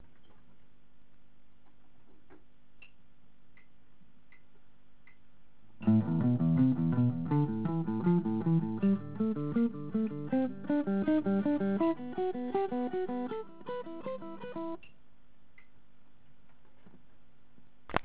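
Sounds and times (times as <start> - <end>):
guitar alternate picking: 5.8 - 14.8.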